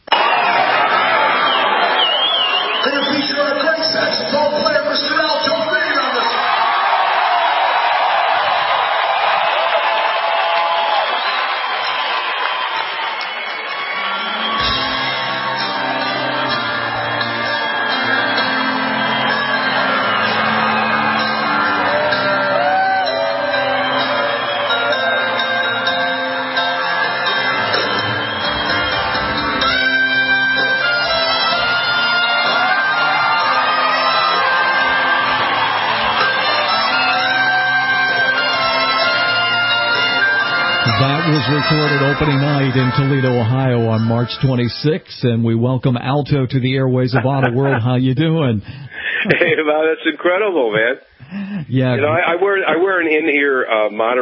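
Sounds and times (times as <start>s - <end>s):
concert crowd cheering: 0.0s - 44.7s
live band music with sustained tones: 13.9s - 45.0s
speech: 44.3s - 54.2s
laughter: 47.0s - 52.6s.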